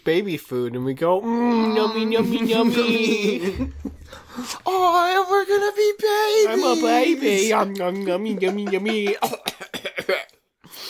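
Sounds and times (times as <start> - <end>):
speech: 0.0 - 10.8
laughter: 2.0 - 4.5, 6.4 - 9.7
harsh coughs: 9.1 - 10.4.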